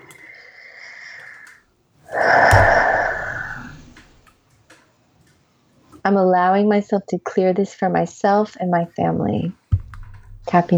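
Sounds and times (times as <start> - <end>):
person taking a big deep breath during a tapping exercise: 2.1 - 4.1
speech: 6.0 - 9.6, 10.5 - 10.7.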